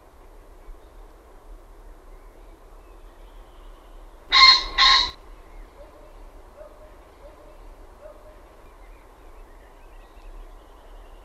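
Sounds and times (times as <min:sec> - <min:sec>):
quiet background hiss: 0:00.0 - 0:11.2
common pheasant giving a loud harsh two-note crow: 0:04.3 - 0:05.2.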